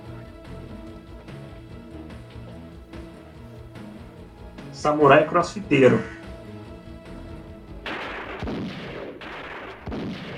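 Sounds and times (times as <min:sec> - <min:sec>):
steady tonal background: 0:00.0 - 0:08.4
speech: 0:04.8 - 0:06.2
gunshots: 0:07.8 - 0:10.3.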